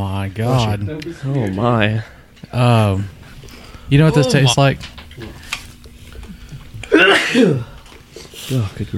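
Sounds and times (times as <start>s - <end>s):
speech: 0.3s - 3.2s, 3.9s - 5.4s, 7.3s - 7.7s, 8.5s - 8.9s
person sneezing: 6.9s - 7.7s.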